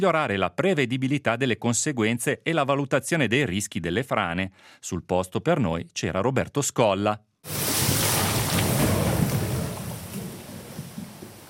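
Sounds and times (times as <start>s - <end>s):
speech: 0.0s - 7.6s
water and sand rushing down a channel: 7.5s - 11.4s.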